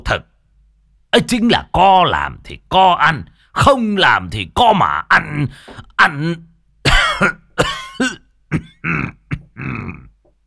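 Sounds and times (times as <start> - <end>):
speech: 0.1 - 0.3, 1.1 - 10.1
elderly man's dry coughing voiced by a narrator: 6.8 - 10.2.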